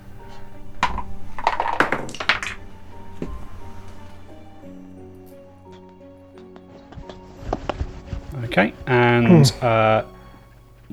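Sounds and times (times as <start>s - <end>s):
dice rolled onto a wooden table during a betting game: 0.8s - 2.6s
speech: 8.6s - 10.1s.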